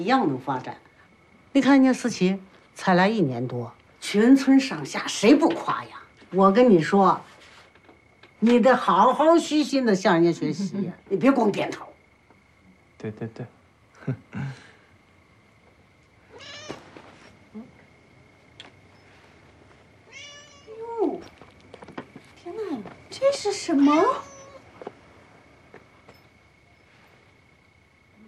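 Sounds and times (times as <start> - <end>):
speech: 0.0 - 0.9, 1.5 - 7.3, 8.4 - 11.9, 13.0 - 14.7, 22.8 - 24.3
cat meowing: 16.3 - 16.8, 20.1 - 20.8, 23.8 - 24.7.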